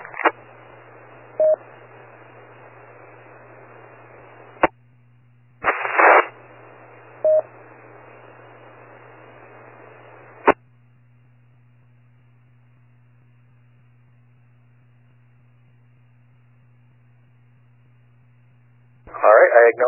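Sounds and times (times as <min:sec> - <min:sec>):
hissy band-limited radio static of a weak transmission failing to reach a repeater: 0:00.0 - 0:04.7, 0:05.6 - 0:10.6, 0:19.1 - 0:19.8
harsh noisy radio burst: 0:05.6 - 0:07.4
speech: 0:19.6 - 0:19.8.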